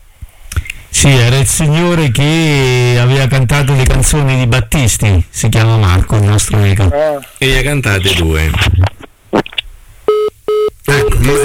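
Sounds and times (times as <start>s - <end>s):
person speaking loudly: 1.0s - 8.7s, 10.9s - 11.4s
speech: 1.0s - 9.0s
telephone line tone beeps after a call drops: 10.1s - 11.4s.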